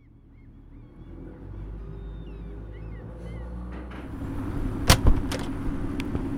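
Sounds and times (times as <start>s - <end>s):
vehicle engines idling: 0.0s - 6.3s
metallic clanks and thuds of cars rolling aboard a ferry: 3.6s - 5.6s.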